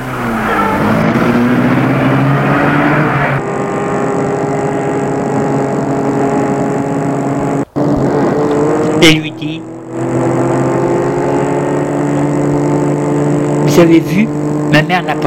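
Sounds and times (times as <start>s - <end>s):
car engine starting: 0.0s - 15.2s
speech: 9.0s - 9.2s, 13.8s - 15.2s.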